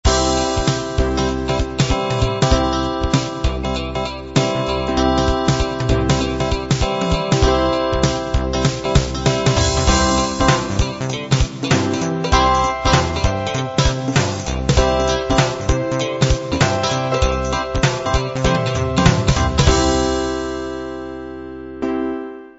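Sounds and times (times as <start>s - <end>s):
rhythm and blues shuffle: 0.1s - 20.8s.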